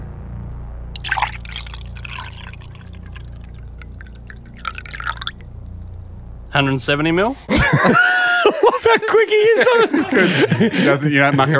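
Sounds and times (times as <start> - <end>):
low steady hum: 0.0 - 11.5
water poured into a container: 1.0 - 6.6
speech: 6.6 - 11.5
laughter: 7.5 - 11.5.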